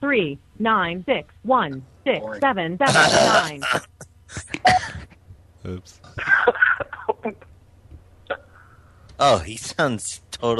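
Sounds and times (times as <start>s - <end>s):
speech: 0.1s - 4.5s, 5.6s - 6.6s, 9.2s - 10.5s
man coughing on a voicemail greeting: 2.9s - 5.1s
man laughing on a voicemail greeting: 2.9s - 5.1s, 6.1s - 6.8s.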